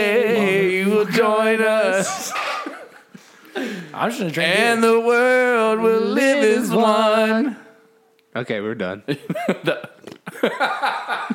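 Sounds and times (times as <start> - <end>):
speech: 1.0 - 2.5, 3.6 - 7.6, 8.4 - 11.3
laughter: 1.9 - 3.9, 9.1 - 11.3
person making wet sputtering fart-like noises into microphone: 10.0 - 10.3.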